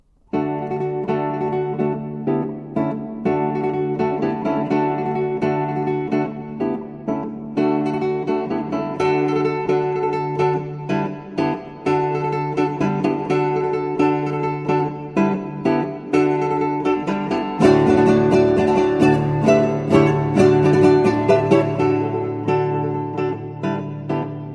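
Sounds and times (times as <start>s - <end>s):
classical guitar: 0.0s - 24.5s.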